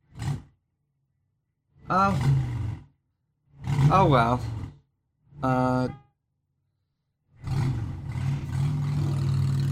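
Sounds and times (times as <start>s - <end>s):
speech: 1.9s - 2.5s, 3.9s - 4.6s, 5.4s - 6.0s
motorcycle engine revving and rumbling as it passes outside: 1.9s - 4.8s, 7.4s - 9.6s.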